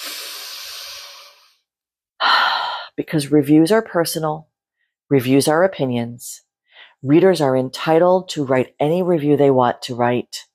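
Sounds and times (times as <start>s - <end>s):
person taking a long airy breath: 0.0s - 3.0s
speech: 3.0s - 4.5s, 5.1s - 10.5s.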